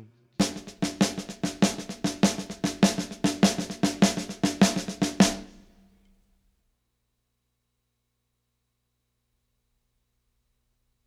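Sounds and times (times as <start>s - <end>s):
samba snare drum on a drumset: 0.4s - 5.8s.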